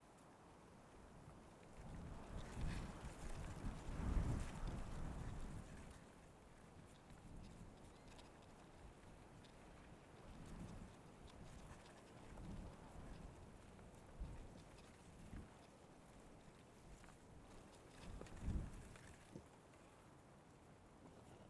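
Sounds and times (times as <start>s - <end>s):
gentle wind on the road of Sao Jorge: 0.1s - 21.4s.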